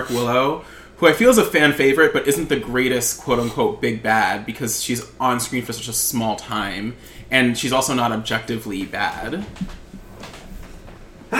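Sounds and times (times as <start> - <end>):
breathy inhales: 0.0 - 1.0, 7.0 - 7.3
speech: 0.0 - 9.8.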